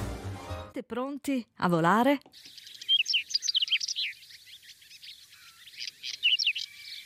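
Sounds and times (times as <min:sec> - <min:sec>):
speech: 0:00.9 - 0:02.6
whinchat singing: 0:02.3 - 0:07.0.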